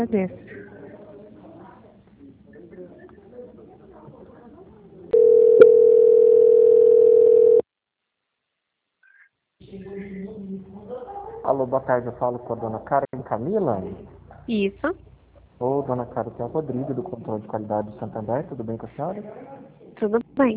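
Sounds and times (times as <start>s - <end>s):
speech: 0.0s - 0.6s, 11.5s - 20.5s
steady phone-line tone during a call transfer: 5.2s - 7.6s.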